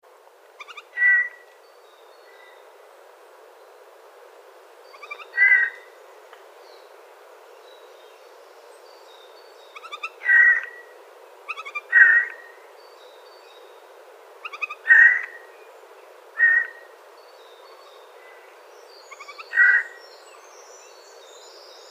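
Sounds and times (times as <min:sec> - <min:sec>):
Eurasian jay Garrulus glandarius calling: 0:00.6 - 0:01.4, 0:05.0 - 0:05.8, 0:09.8 - 0:10.8, 0:11.5 - 0:12.4, 0:14.4 - 0:15.4, 0:16.4 - 0:16.8, 0:19.2 - 0:20.0.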